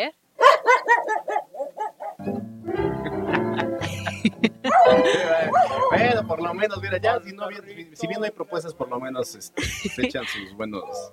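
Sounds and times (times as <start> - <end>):
speech: 0.0 - 0.2, 6.3 - 11.1
dog barking: 0.4 - 2.2, 4.6 - 6.1
laughter: 2.8 - 5.9, 9.6 - 10.5.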